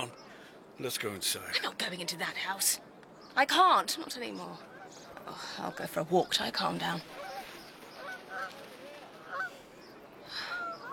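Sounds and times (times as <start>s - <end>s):
soft steady outdoor hiss: 0.0s - 10.9s
speech: 0.8s - 7.2s
geese flying south honking: 5.9s - 9.6s.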